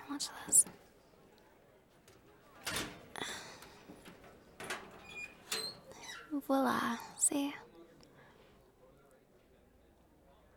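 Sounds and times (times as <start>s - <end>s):
speech: 0.1s - 0.9s, 6.3s - 7.6s
creaky door being pushed open: 2.6s - 3.4s, 4.0s - 6.3s.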